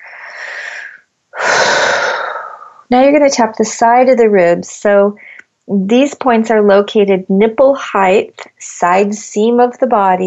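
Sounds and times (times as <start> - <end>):
big noisy breath during an EFT tapping exercise: 0.0 - 2.9
speech: 2.9 - 10.2.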